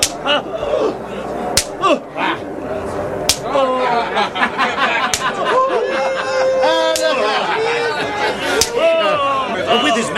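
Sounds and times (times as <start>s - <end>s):
whip lashes cracking as a soldier whips a prisoner: 0.0s - 0.2s, 1.6s - 1.8s, 3.3s - 3.5s, 8.6s - 8.8s
laughter: 0.0s - 1.3s, 3.4s - 10.1s
agitated crowd voices: 0.0s - 10.1s
people crying out: 0.1s - 2.4s, 3.4s - 10.1s
speech: 0.2s - 0.7s.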